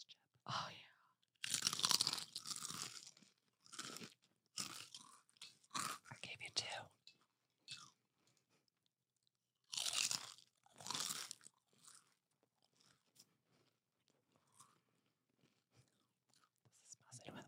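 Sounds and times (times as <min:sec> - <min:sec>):
speech: 0:00.5 - 0:00.8
quiet chewing: 0:01.2 - 0:17.4
crunching bites of thick fried pork skin: 0:01.4 - 0:06.1, 0:07.7 - 0:07.9, 0:09.6 - 0:13.7.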